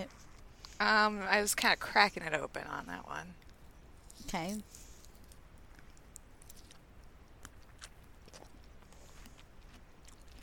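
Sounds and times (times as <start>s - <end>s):
steady low hiss: 0.0s - 10.4s
speech: 0.8s - 3.4s, 4.2s - 4.8s
person chewing sweet food with crunching and smacking: 3.4s - 10.4s.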